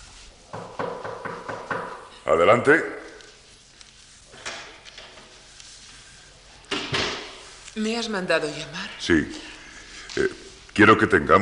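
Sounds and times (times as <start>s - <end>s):
firm knocking on a wooden door: 0.5s - 2.1s
speech: 2.3s - 3.0s, 7.8s - 9.5s, 10.8s - 11.4s.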